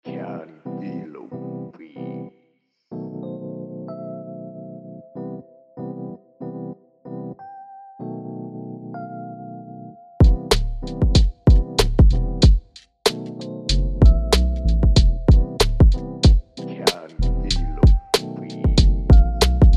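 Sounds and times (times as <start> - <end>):
rap beat in E minor: 10.2 - 19.7.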